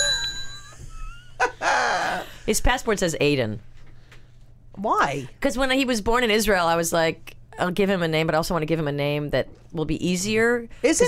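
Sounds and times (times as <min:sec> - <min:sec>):
bell ding: 0:00.0 - 0:00.9
speech: 0:02.5 - 0:03.7, 0:04.8 - 0:11.0.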